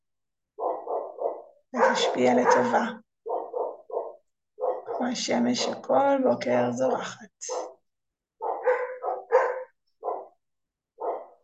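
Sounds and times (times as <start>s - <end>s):
dogs barking: 0.6s - 5.2s, 6.9s - 7.8s, 8.4s - 11.4s
speech: 1.7s - 3.0s, 5.0s - 7.7s.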